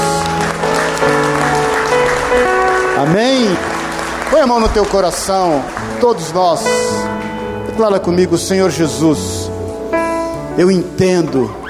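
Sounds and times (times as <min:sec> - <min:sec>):
crowd applauding: 0:00.0 - 0:07.5
sustained keyboard chords: 0:00.0 - 0:11.6
speech: 0:04.4 - 0:09.5, 0:10.6 - 0:11.6.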